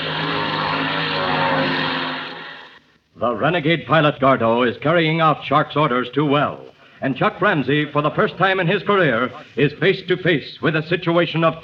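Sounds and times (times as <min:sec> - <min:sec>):
propeller airplane flying overhead: 0:00.0 - 0:02.8
speech: 0:03.2 - 0:11.6.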